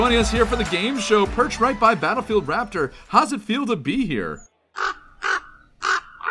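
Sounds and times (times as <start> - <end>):
speech: 0.0 - 4.9
raven cawing: 4.7 - 6.2.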